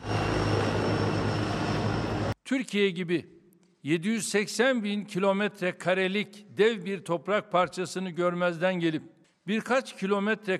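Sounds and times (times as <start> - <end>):
attack helicopters flying over the Eastern Mediterranean: 0.0 - 2.4
speech: 2.5 - 10.5.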